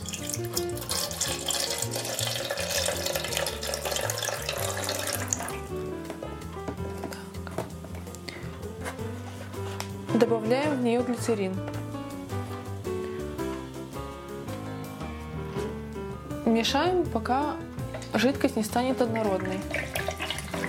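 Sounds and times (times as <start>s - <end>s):
water pouring into a jar: 0.0s - 5.6s, 19.1s - 20.6s
soft music: 0.0s - 20.6s
speech: 10.2s - 11.8s, 16.6s - 19.8s.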